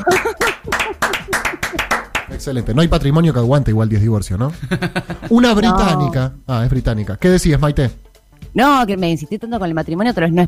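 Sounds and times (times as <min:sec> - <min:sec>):
people laughing: 0:00.0 - 0:02.3, 0:04.6 - 0:06.1
few people clapping: 0:00.0 - 0:02.4
speech: 0:02.4 - 0:10.4.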